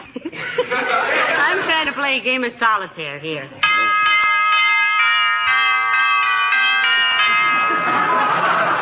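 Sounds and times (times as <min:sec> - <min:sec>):
laughter: 0:00.0 - 0:02.1, 0:07.1 - 0:08.7
speech: 0:02.0 - 0:03.7
doorbell ringing: 0:03.6 - 0:08.7.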